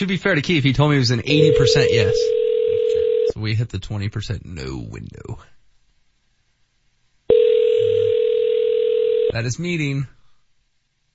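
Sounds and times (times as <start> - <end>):
speech: 0.0 - 2.4, 3.4 - 5.5, 9.3 - 10.2
telephone ringing tone heard through the line: 1.3 - 3.4, 7.3 - 9.4.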